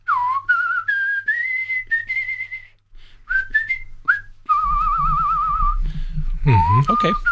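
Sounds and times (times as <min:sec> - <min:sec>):
person whistling an Irish folk melody: 0:00.0 - 0:05.8, 0:06.4 - 0:07.3
faint low rumble: 0:04.5 - 0:07.3
speech: 0:06.7 - 0:07.3.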